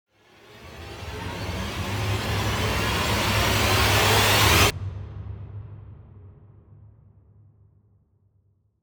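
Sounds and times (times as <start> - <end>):
analog electronic cluster with a medium rise: 0.3 - 4.7.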